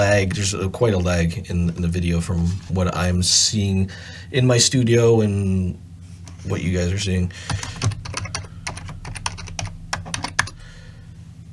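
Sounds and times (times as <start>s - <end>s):
speech: 0.0s - 5.8s, 6.4s - 7.9s
rapid typing on a computer keyboard: 7.5s - 10.6s.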